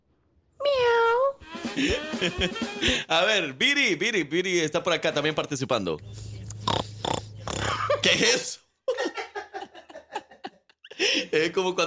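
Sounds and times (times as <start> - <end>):
person imitating a cat meow: 0.6 - 1.4
laughter: 1.5 - 3.1, 7.6 - 11.3
speech: 1.8 - 6.3, 8.0 - 8.6, 11.3 - 11.8.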